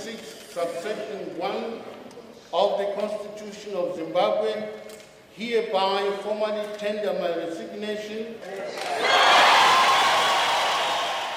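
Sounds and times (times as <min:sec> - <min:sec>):
speech: 0:00.1 - 0:09.4
dense street crowd cheering and shouting: 0:08.8 - 0:11.3.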